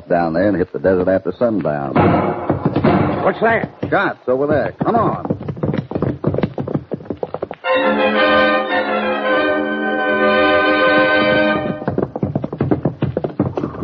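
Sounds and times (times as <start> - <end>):
speech: 0.1 - 5.4
horse hoofbeats galloping: 2.0 - 9.3, 10.2 - 13.8.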